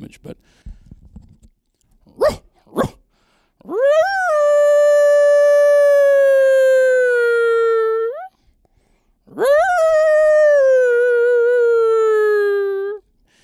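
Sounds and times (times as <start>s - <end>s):
coyote-style howls: 3.6s - 8.3s, 9.3s - 13.0s.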